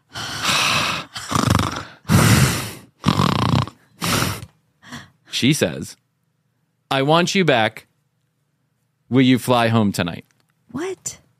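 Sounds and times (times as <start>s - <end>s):
voice imitating heavy raspy breathing on a phone line: 0.0s - 5.2s
speech: 5.4s - 6.0s, 6.9s - 7.9s, 9.1s - 11.2s.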